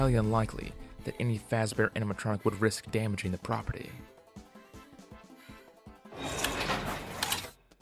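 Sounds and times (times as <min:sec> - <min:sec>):
speech: 0:00.0 - 0:04.1
elevator doors sliding closed: 0:06.1 - 0:07.5.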